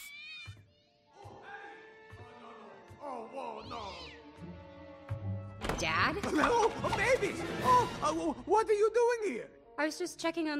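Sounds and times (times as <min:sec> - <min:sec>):
cats meowing in drawn-out wavering cries: 0:03.6 - 0:04.3
speech: 0:05.8 - 0:10.5.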